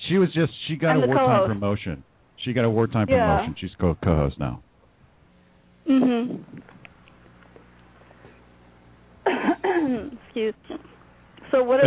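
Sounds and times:
speech: 0:00.1 - 0:04.7, 0:05.8 - 0:06.7, 0:10.4 - 0:10.9, 0:11.5 - 0:11.8
person coughing harshly: 0:09.2 - 0:10.8.

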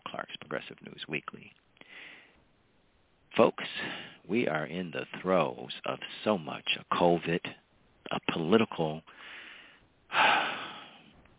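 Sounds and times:
speech: 0:00.5 - 0:02.1, 0:03.4 - 0:09.4
speaker sharply drawing in a breath: 0:01.8 - 0:02.4, 0:09.1 - 0:11.1.

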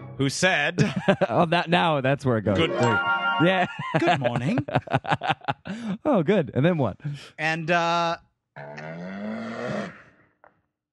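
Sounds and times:
speech: 0:00.2 - 0:10.0
laughter: 0:00.7 - 0:01.7, 0:03.4 - 0:06.2
cow mooing: 0:08.6 - 0:10.1.

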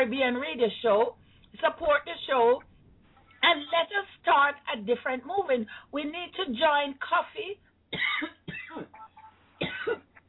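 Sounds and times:
speech: 0:00.0 - 0:02.7, 0:03.4 - 0:09.0
person coughing harshly: 0:08.0 - 0:09.0, 0:09.6 - 0:10.1
throat clearing: 0:08.0 - 0:09.0.

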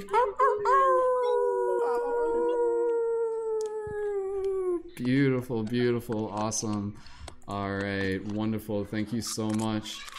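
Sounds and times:
speech: 0:00.0 - 0:00.9, 0:05.0 - 0:10.1
several people on a video call imitating wolf howls: 0:00.0 - 0:04.9.

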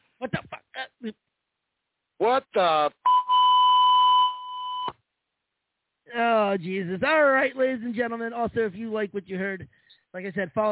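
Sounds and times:
speech: 0:01.0 - 0:01.2, 0:02.2 - 0:03.0, 0:06.6 - 0:10.7
high-pitched electronic censor bleep tone: 0:03.0 - 0:04.9.

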